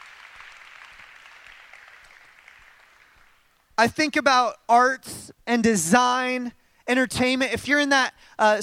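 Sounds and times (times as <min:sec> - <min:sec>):
audience applause for educators: 0:00.0 - 0:03.5
speech: 0:03.8 - 0:08.6.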